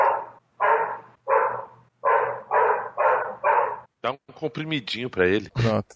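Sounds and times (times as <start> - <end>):
dog barking: 0.0 - 3.9
speech: 4.0 - 5.9.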